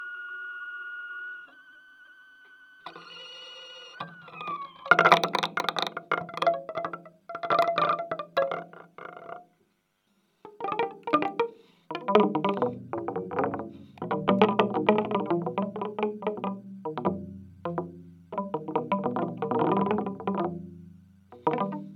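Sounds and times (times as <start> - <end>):
bouncy drumming: 4.0 - 9.5, 10.5 - 21.9.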